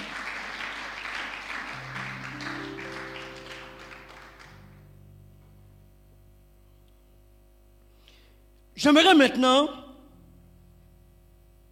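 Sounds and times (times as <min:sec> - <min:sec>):
crowd clapping and cheering: 0:00.0 - 0:04.9
sustained organ or keyboard tones: 0:01.7 - 0:06.8
speech: 0:08.8 - 0:09.8.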